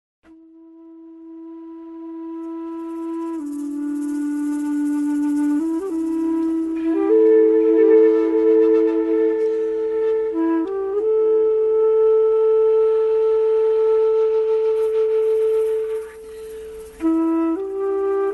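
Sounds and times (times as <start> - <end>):
flute sampler: 0.2 - 18.3.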